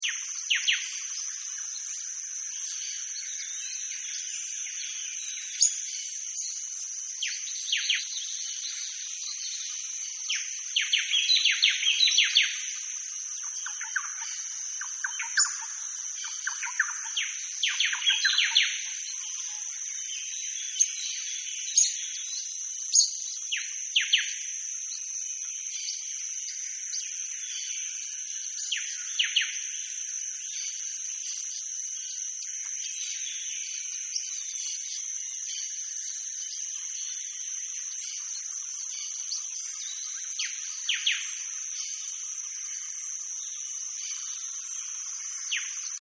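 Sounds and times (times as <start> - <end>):
Amazon River jungle ambience: 0.0 - 46.0.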